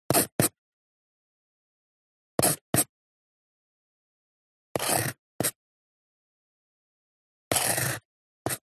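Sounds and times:
reed pen handwriting on papyrus: 0.1 - 0.6, 2.4 - 3.0, 4.8 - 5.6, 7.5 - 8.6.

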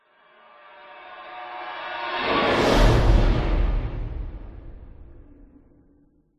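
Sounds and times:
evil scary horror whoosh: 2.1 - 5.8.

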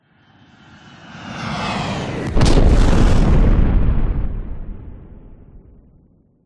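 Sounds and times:
designed jet airplane crash explosion: 2.1 - 5.8.

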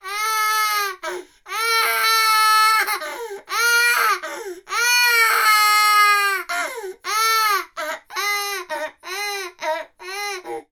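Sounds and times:
18 month toddler boy crying: 0.0 - 10.7.

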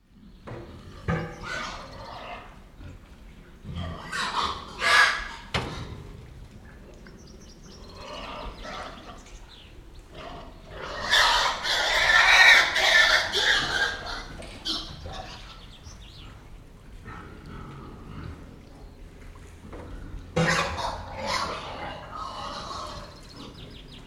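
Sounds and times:
pigs squealing in a fight in a shed: 0.8 - 2.6, 3.9 - 5.6, 10.1 - 15.6, 20.4 - 23.5.

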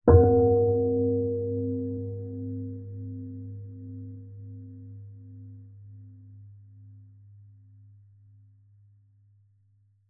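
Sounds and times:
large heavy bell soft hit chime: 0.1 - 4.6.

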